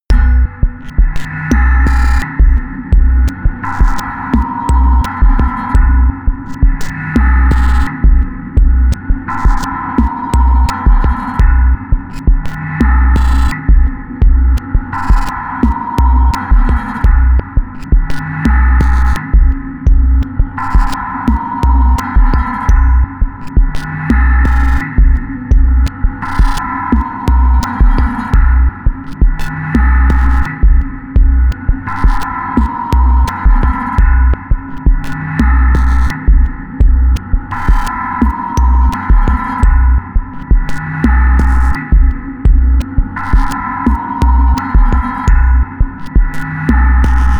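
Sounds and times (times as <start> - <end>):
dark sequenced electronic beat: 0.0 - 47.3.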